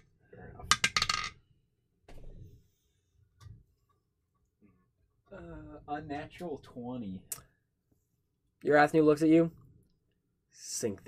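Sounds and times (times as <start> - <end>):
dice clattering onto a hard surface: 0.7 - 1.4
speech: 5.4 - 7.4, 8.6 - 9.6, 10.5 - 11.0.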